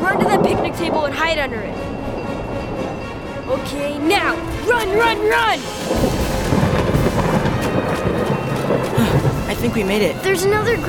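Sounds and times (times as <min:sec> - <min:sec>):
hiss of falling rain: 0:00.0 - 0:02.4, 0:03.6 - 0:10.8
deep rolling thunder during a lightning storm: 0:00.0 - 0:10.8
speech: 0:00.1 - 0:02.2, 0:03.5 - 0:06.2, 0:09.5 - 0:10.8.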